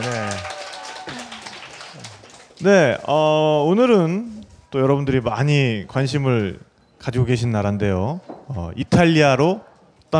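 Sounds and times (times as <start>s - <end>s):
crowd applause: 0.0s - 2.9s
speech: 2.6s - 10.1s.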